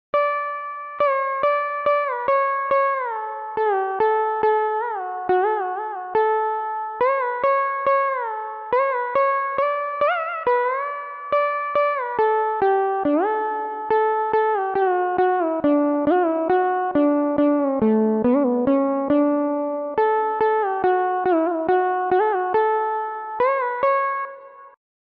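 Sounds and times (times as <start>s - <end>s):
Carnatic music: 0.2s - 24.8s.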